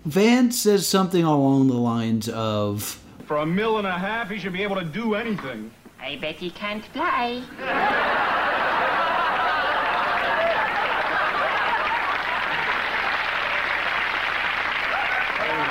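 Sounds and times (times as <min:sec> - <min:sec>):
speech: 0:00.0 - 0:08.4
audience laughter: 0:07.6 - 0:13.3
large audience applauding: 0:07.6 - 0:15.6
scattered whoops and hollers: 0:14.9 - 0:15.6.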